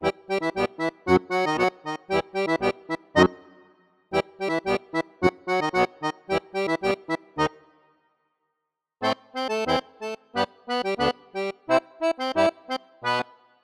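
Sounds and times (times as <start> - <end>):
accordion loop: 0.0 - 7.8, 9.0 - 13.4.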